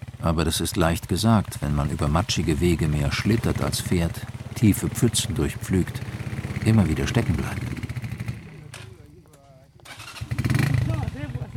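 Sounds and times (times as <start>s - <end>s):
motorcycle engines restarting on a muddy track: 0.0s - 11.5s
speech: 0.2s - 7.7s.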